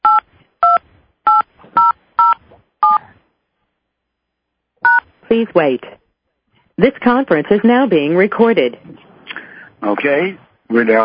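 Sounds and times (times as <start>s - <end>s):
phone keypad touch tones entering a PIN: 0.0s - 3.0s, 4.8s - 5.0s
speech: 5.3s - 6.0s, 6.8s - 9.0s, 9.8s - 11.0s.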